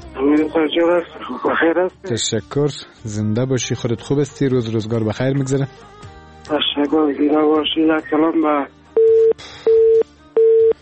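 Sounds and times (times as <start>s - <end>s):
speech: 0.2s - 8.8s
telephone busy tone after a dropped call on a call-in line: 9.0s - 10.8s.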